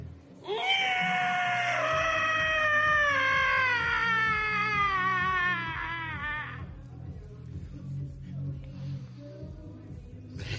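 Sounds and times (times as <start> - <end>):
man imitating a pig squeal: 0.4 - 6.6.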